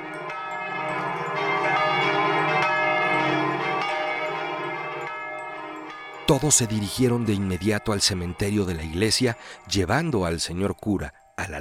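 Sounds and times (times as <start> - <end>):
church bell ringing frantically: 0.0 - 11.5
speech: 6.3 - 11.5.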